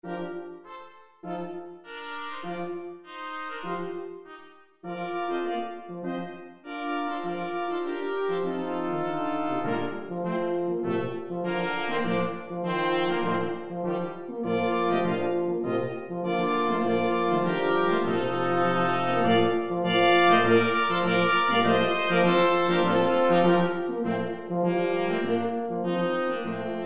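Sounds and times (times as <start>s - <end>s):
brass quintet playing: 0.0s - 26.8s.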